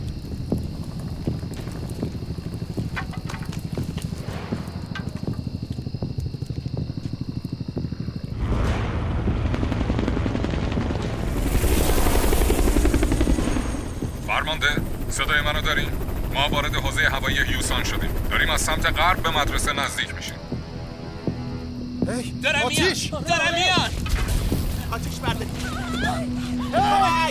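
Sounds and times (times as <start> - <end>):
helicopter rotor chopping with a constant whine: 0.0 - 20.7
speech: 15.3 - 20.4, 22.1 - 24.1, 24.9 - 27.2.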